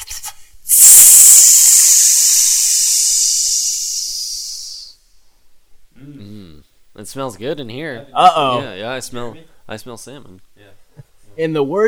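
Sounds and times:
person hissing to imitate a branding iron searing a salmon: 0.0s - 5.0s
speech: 7.0s - 10.5s, 11.4s - 11.8s.

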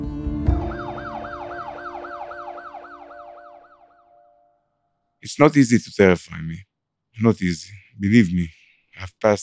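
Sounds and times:
ambulance siren wailing as ambulance drives away: 0.5s - 4.4s
speech: 5.3s - 9.4s.

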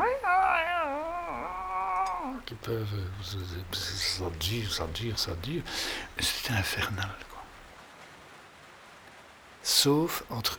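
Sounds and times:
person mimicking caterwaul of cats in heat: 0.0s - 2.5s
speech: 2.5s - 7.3s, 9.7s - 10.5s.

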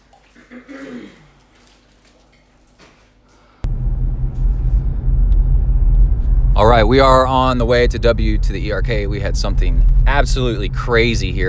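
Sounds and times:
heavy truck engine roaring: 3.7s - 11.4s
speech: 6.6s - 11.4s.

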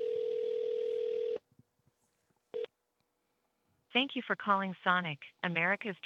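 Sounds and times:
steady telephone dial tone: 0.0s - 1.4s
speech: 3.9s - 6.0s.

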